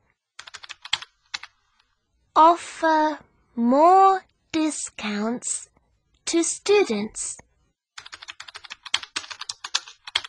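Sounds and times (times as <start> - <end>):
typing on a computer keyboard: 0.4 - 1.6, 8.0 - 10.2
speech: 2.4 - 5.7, 6.3 - 7.4.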